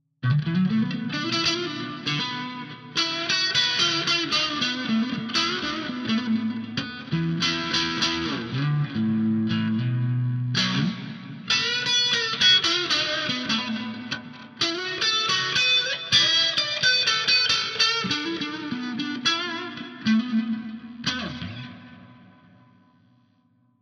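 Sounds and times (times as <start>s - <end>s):
distorted Stratocaster electric guitar on neck pickup: 0.2s - 22.9s.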